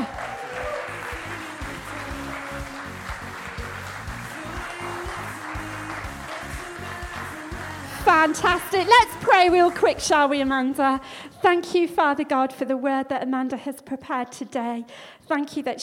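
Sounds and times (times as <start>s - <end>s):
sizeable crowd clapping: 0.0s - 10.5s
speech: 8.2s - 15.8s.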